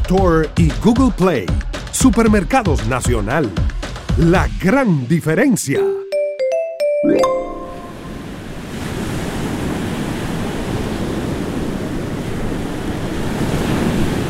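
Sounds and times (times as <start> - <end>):
speech: 0.1 - 6.0, 7.0 - 7.4
bright tones: 5.8 - 8.5
ocean surf waves breaking: 7.1 - 14.2.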